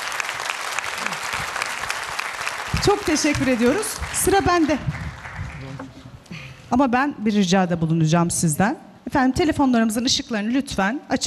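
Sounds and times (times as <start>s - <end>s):
audience applause at a live stage show: 0.0s - 5.9s
speech: 2.8s - 5.0s, 6.7s - 11.2s.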